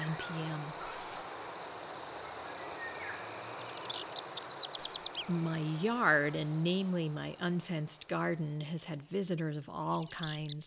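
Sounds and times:
bird calls: 0.0 - 6.4
insects chirring: 0.0 - 10.6
speech: 5.3 - 10.6.

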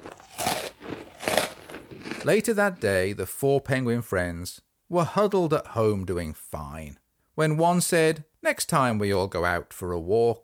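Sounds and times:
crunchy chewing while eating lunch: 0.0 - 2.5
speech: 2.2 - 10.4.

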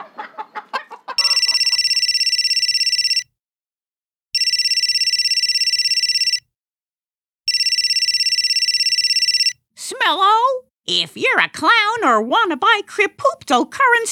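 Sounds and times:
telephone ringing with trilling electronic tone: 1.2 - 3.3, 4.4 - 6.4, 7.5 - 9.6
speech: 10.9 - 14.0.

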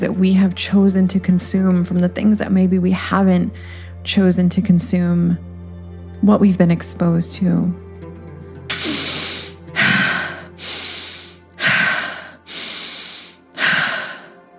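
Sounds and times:
speech: 0.0 - 5.5, 6.2 - 7.8
deep airy breaths in and out during guided breathwork: 3.6 - 4.0, 8.7 - 14.5.

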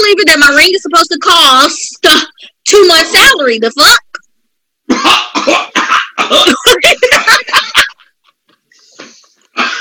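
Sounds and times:
speech: 0.1 - 4.1
harsh rapid hacking coughing: 4.9 - 8.0, 8.8 - 9.7
laughter: 6.0 - 9.7.

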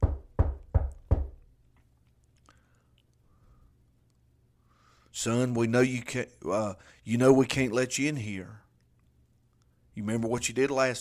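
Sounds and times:
knocking on a wooden door: 0.0 - 1.4
speech: 5.2 - 8.6, 10.0 - 10.9.

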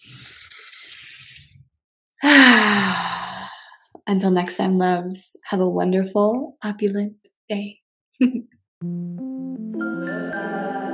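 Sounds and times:
deep breath in: 2.2 - 3.9
speech: 4.1 - 10.9.

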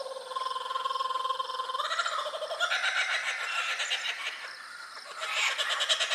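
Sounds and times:
laughing kookaburra laughing call in Australia: 0.4 - 6.1.

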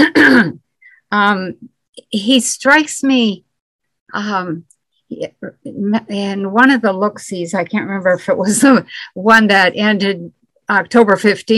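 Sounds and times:
person clearing throat: 0.0 - 0.6
speech: 1.1 - 3.5, 4.1 - 11.5.

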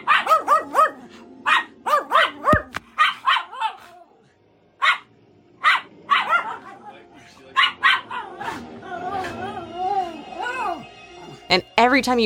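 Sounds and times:
dog high yips and whining: 0.0 - 4.0, 4.8 - 6.9, 7.6 - 11.4
dogs barking excitedly: 0.0 - 4.0, 4.8 - 9.6
speech: 11.5 - 12.2.

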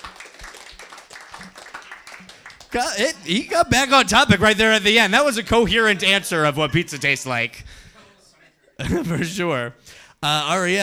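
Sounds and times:
audience clapping: 0.0 - 7.6
laughter: 1.4 - 9.8
speech: 2.7 - 7.8, 8.8 - 10.8.

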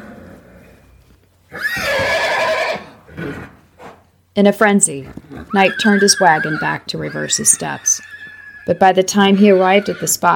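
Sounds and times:
horse whinnying in distress: 1.5 - 3.6, 5.1 - 10.3
speech: 4.4 - 8.1, 8.7 - 10.3.

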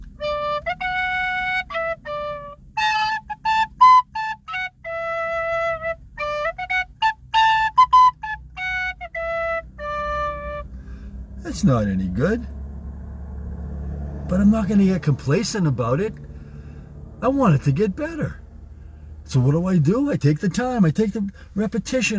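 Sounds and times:
low steady rumble: 0.0 - 22.1
tin whistle playing a lively melody: 0.2 - 10.7
speech: 11.6 - 12.6, 14.3 - 16.3, 17.2 - 18.4, 19.3 - 22.1.

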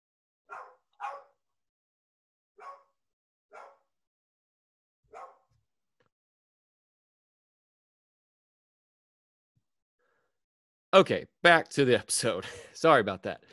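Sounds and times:
dog barking: 0.5 - 1.4, 2.6 - 3.9, 5.1 - 5.5
speech: 10.9 - 13.5.

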